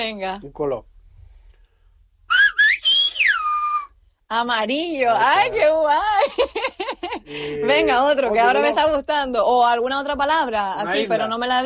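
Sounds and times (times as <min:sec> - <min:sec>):
speech: 0:00.0 - 0:00.9, 0:04.3 - 0:06.7, 0:07.3 - 0:11.6
person whistling the speech melody of a Spanish color word: 0:02.3 - 0:04.0.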